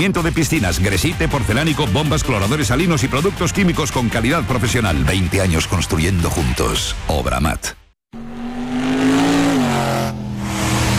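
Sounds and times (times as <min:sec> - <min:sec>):
speech: 0:00.0 - 0:07.8
car engine revving: 0:08.1 - 0:10.9.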